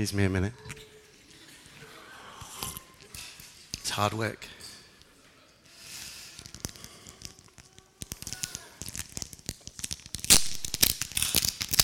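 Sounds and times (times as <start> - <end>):
speech: 0.0 - 0.9, 4.0 - 4.6
wrapping paper tearing off a present: 6.2 - 11.8.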